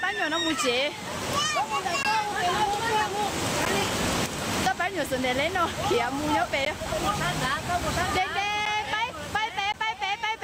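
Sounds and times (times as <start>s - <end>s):
rushing flash-flood water current: 0.0s - 10.4s
speech: 0.1s - 4.0s, 4.9s - 8.5s
child's high voice: 1.3s - 2.9s.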